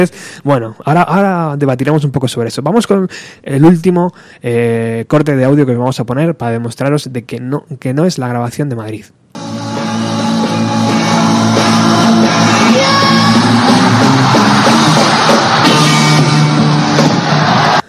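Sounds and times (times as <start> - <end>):
speech: 0.0 - 9.6
crowd roaring: 9.4 - 17.8
loud live rock band playing: 9.4 - 17.8
singer screaming at end of live rock song: 9.8 - 17.8.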